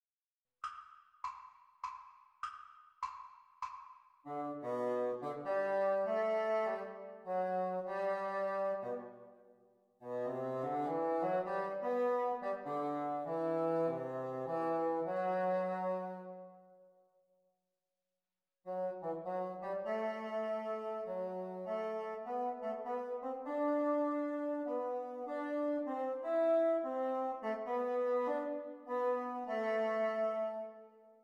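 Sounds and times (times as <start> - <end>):
bassoon duet practice: 4.3 - 9.1, 10.0 - 16.4, 18.7 - 31.2.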